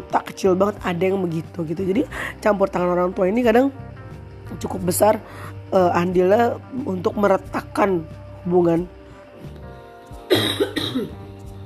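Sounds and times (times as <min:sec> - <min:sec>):
speech: 0:00.1 - 0:03.8, 0:04.5 - 0:09.6
person coughing harshly from a cold: 0:10.3 - 0:11.2.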